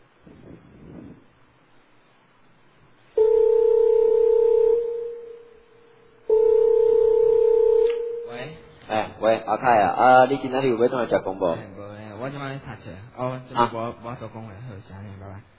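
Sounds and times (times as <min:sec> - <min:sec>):
electronic telephone ringing tone: 0:03.2 - 0:05.6, 0:06.3 - 0:08.6
speech: 0:09.5 - 0:15.5.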